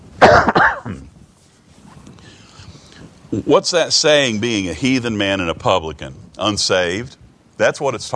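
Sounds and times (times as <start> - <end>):
person coughing: 0.2 - 1.1
speech: 3.3 - 8.1.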